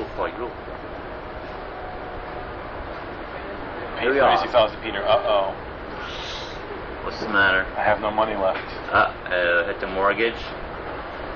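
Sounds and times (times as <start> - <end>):
rumble and hiss inside a moving train: 0.0 - 11.3
speech: 4.0 - 5.6, 7.1 - 10.6.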